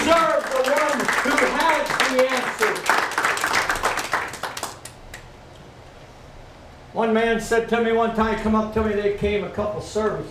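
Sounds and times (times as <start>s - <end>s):
room full of people clapping: 0.0s - 5.3s
speech: 7.0s - 10.3s.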